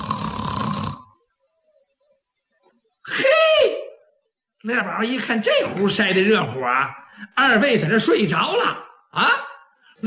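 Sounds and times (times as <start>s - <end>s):
person imitating snoring: 0.0s - 1.2s
speech: 4.6s - 9.4s.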